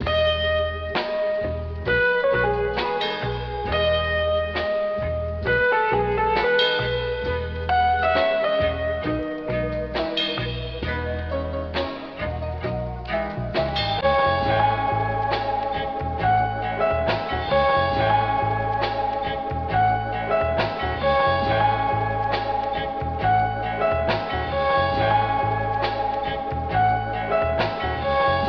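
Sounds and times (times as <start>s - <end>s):
drums loop: 0.0s - 28.4s
piano keys loop: 0.0s - 28.4s.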